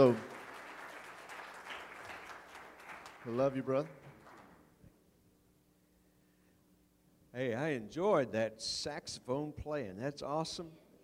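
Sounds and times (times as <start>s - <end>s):
speech: 0.0s - 0.3s, 3.2s - 4.0s, 7.3s - 10.8s
applause from a religious gathering: 0.0s - 4.7s.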